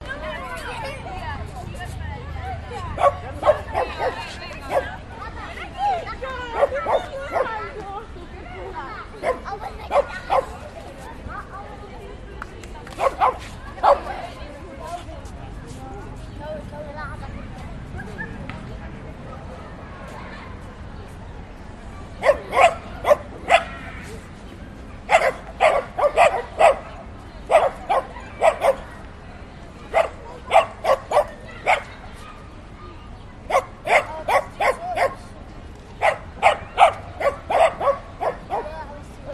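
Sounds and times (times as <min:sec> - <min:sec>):
kids playing with dogs in Budapest Hungary: 0:00.0 - 0:39.3
people chatting walla in Budapest Hungary: 0:00.0 - 0:39.3
dogs barking in Budapest Hungary: 0:03.0 - 0:05.0, 0:06.5 - 0:07.6, 0:09.2 - 0:10.6, 0:13.0 - 0:14.1, 0:22.2 - 0:23.8, 0:25.1 - 0:28.9, 0:29.9 - 0:32.0, 0:33.5 - 0:35.2, 0:36.0 - 0:38.8.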